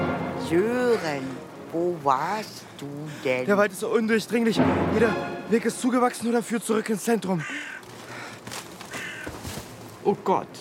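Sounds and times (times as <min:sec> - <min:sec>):
speech: 0:00.5 - 0:07.7, 0:10.0 - 0:10.5
raven cawing: 0:07.3 - 0:09.8.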